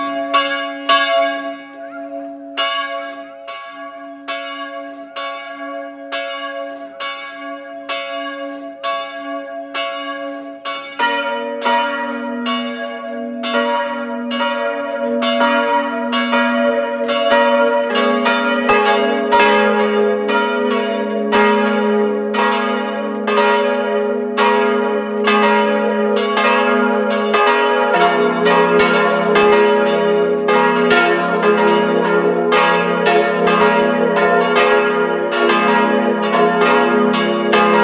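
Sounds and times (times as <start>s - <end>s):
parish church bells ringing at noon: 0.0s - 37.8s.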